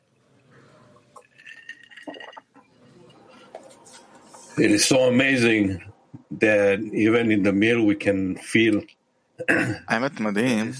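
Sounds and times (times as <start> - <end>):
glasses clinking in a toast at a meal: 1.2 - 2.6
table clatter: 1.2 - 2.7
speech: 4.6 - 10.7.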